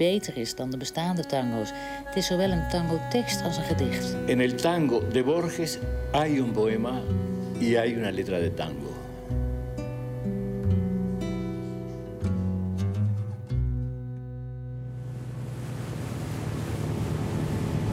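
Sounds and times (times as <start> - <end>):
speech: 0.0 - 9.0
instrumental music: 0.0 - 15.5
surging water aboard a ferry crossing the Río de la Plata: 14.9 - 17.9.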